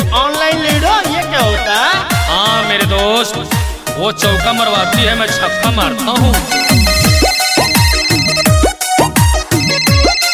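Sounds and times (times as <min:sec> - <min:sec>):
speech: 0:00.1 - 0:07.0
mobile phone electronic ringtone: 0:06.4 - 0:10.3.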